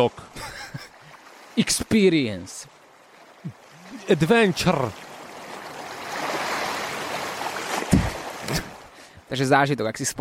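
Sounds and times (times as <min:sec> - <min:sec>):
speech: 0:00.0 - 0:00.5, 0:01.6 - 0:02.7, 0:03.4 - 0:05.0, 0:08.5 - 0:08.7, 0:09.3 - 0:10.2
sea waves: 0:00.0 - 0:10.2
laughter: 0:00.3 - 0:01.0
brief low thump: 0:07.9 - 0:08.7.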